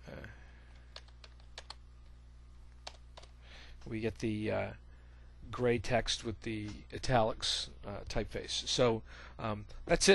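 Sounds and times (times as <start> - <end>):
typing on a computer keyboard: 0.9 - 1.8, 2.8 - 3.3
speech: 3.8 - 4.8, 5.5 - 10.1.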